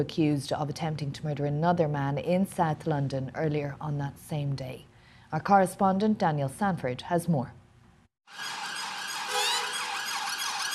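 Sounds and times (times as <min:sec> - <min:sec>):
speech: 0:00.0 - 0:07.6, 0:08.3 - 0:08.6
police convoy sirens blaring: 0:08.4 - 0:10.7.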